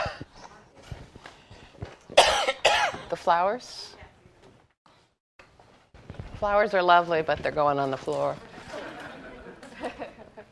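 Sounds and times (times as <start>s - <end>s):
person coughing harshly: 2.2s - 3.1s
speech: 3.2s - 4.0s, 6.4s - 8.5s
laughter: 8.5s - 10.5s.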